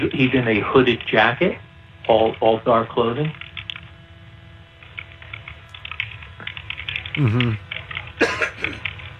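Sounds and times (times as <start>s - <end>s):
speech: 0.0s - 3.4s, 7.2s - 7.6s
low electrical hum: 0.0s - 9.1s
typing on a computer keyboard: 3.3s - 3.8s, 4.8s - 8.1s.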